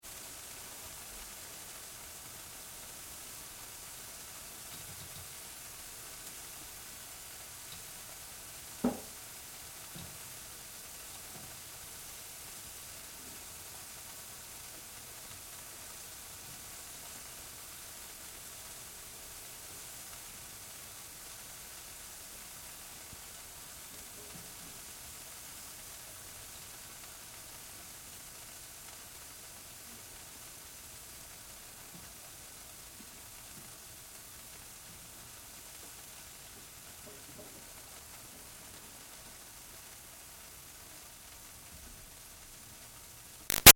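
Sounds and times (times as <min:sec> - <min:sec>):
chicken sizzling steadily in a household oven: 0:00.0 - 0:43.7.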